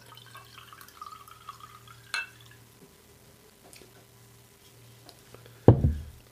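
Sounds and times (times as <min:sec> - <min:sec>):
wine trickling into a glass: 0:00.0 - 0:02.6
knock of a bottle or glass set down: 0:05.7 - 0:06.1.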